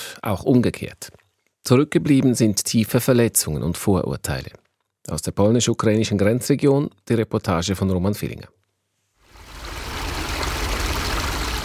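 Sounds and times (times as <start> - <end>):
speech: 0.2 - 8.6
river water flowing: 9.3 - 11.6.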